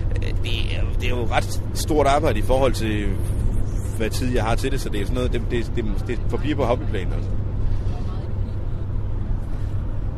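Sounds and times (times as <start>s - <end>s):
car engine rumble and road drone inside a moving car: 0.0s - 10.1s
speech: 1.0s - 3.3s, 4.0s - 7.4s.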